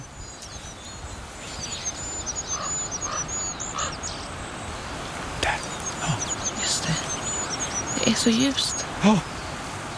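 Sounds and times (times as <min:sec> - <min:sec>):
goldcrest singing: 0:00.0 - 0:09.9
hiss: 0:00.0 - 0:09.9
speech: 0:08.2 - 0:09.3.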